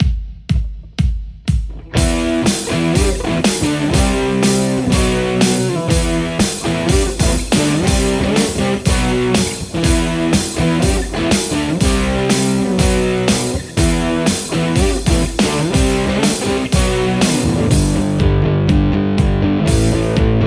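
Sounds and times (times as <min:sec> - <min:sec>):
electric guitar: 0:01.8 - 0:20.4.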